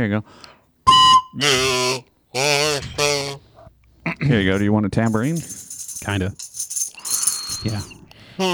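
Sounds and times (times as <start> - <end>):
speech: 0.0 - 0.6, 1.3 - 3.4, 4.2 - 6.5, 7.6 - 8.5
loud buzzy whistle blasts: 0.9 - 3.3.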